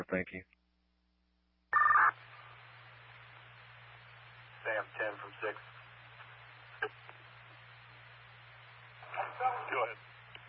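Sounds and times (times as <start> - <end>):
speech: 0.0 - 0.6, 4.6 - 5.8, 6.8 - 7.0, 9.2 - 10.1
telephone keypad tone: 1.8 - 2.1
radio-like hiss: 1.8 - 10.4.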